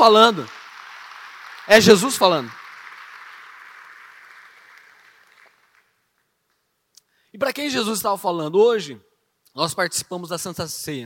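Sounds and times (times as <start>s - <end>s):
speech: 0.0s - 0.6s, 1.7s - 2.6s, 7.4s - 11.0s
crowd applauding: 0.0s - 6.2s.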